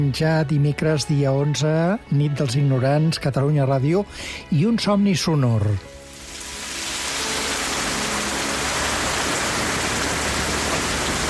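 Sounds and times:
speech: 0.0s - 5.9s
heavy rain falling: 6.3s - 11.2s.

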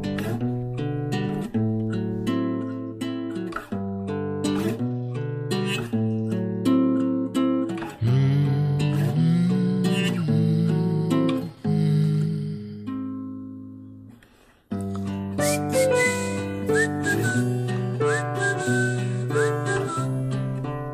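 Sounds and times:
instrumental backing of sustained chords: 0.0s - 20.9s
person whistling a bright sliding tune: 8.0s - 12.8s, 14.8s - 20.9s.

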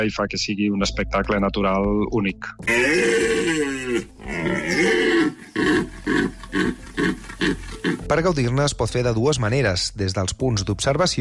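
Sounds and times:
speech: 0.0s - 5.0s, 8.1s - 11.1s
male deer bellowing and grunting during the rut: 2.6s - 8.1s.

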